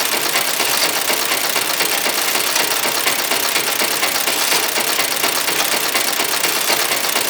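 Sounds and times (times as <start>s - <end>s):
metal gear spinning: 0.1s - 7.1s.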